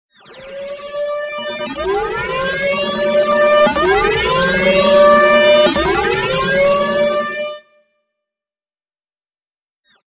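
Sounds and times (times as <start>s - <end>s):
sci-fi alarm: 0.2s - 7.8s.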